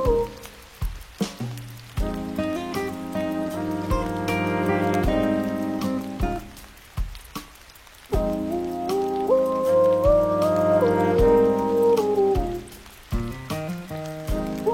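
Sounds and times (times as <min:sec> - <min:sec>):
steady patter of rain: 0:00.0 - 0:14.7
soft sustained music with warm held chords and gentle melody: 0:02.0 - 0:06.6, 0:08.2 - 0:12.8.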